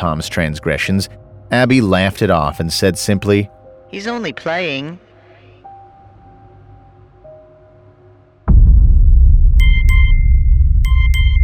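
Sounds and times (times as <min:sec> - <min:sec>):
speech: 0:00.0 - 0:05.1
steady low rumble: 0:06.1 - 0:11.4
phone reminder beep: 0:09.6 - 0:11.4.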